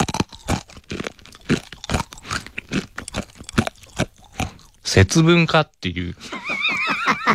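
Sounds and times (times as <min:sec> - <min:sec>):
crunchy dry natto being chewed: 0:00.0 - 0:05.2
speech: 0:04.9 - 0:06.4
laughter: 0:06.2 - 0:07.3.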